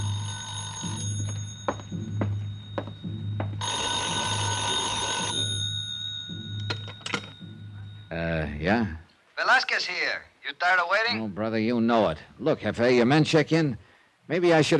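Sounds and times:
telephone bell ringing in a small side-street hotel: 0.0s - 8.2s
speech: 8.6s - 14.7s.

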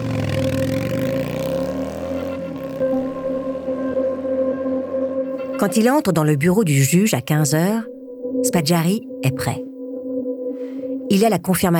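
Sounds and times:
motorcycle engine revving and speeding off at a traffic light: 0.0s - 5.6s
speech: 5.6s - 9.7s, 11.1s - 11.7s.

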